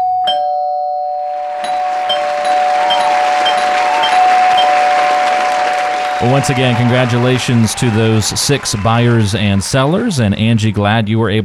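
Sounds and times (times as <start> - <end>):
doorbell sound effect played in celebration: 0.0 - 6.5
repeated bright dings: 0.3 - 6.3
laughter: 2.2 - 11.0
speech: 6.2 - 11.4.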